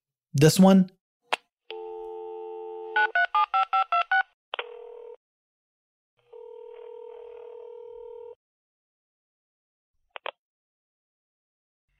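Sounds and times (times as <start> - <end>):
speech: 0.4 - 1.0
dial tone over phone line: 1.7 - 3.3, 4.0 - 5.2, 6.3 - 8.4.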